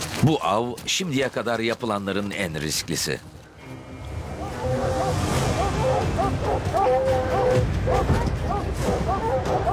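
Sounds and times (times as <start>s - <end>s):
speech: 0.2s - 3.3s
pack of hunting dogs barking and yelping at a treed mountain lion: 4.3s - 9.7s.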